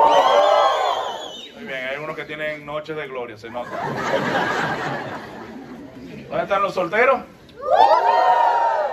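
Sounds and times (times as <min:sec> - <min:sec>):
audience shouting and cheering: 0:00.0 - 0:01.6, 0:07.6 - 0:08.9
speech: 0:02.2 - 0:05.6, 0:06.3 - 0:07.9
laughter: 0:03.6 - 0:06.3.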